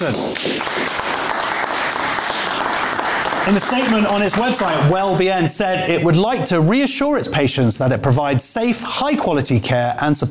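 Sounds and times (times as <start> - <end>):
speech: 0.0 - 0.9, 3.4 - 10.3
large round of applause at an event: 0.0 - 5.2.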